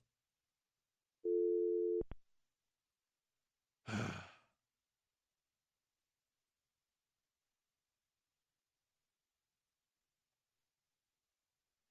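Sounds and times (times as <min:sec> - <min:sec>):
telephone dial tone during failed call: 0:01.3 - 0:02.1
person sighing loudly in exasperation: 0:03.9 - 0:04.4.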